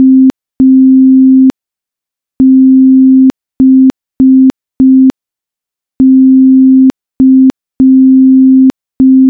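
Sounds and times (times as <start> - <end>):
morse code beeps: 0.0 - 1.5, 2.4 - 5.1, 6.0 - 9.2.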